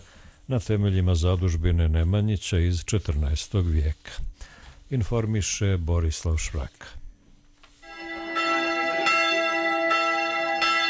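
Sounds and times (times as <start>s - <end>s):
speech: 0.5s - 4.3s, 4.9s - 7.0s
Serbian Orthodox monastery church bell ringing: 7.8s - 10.8s.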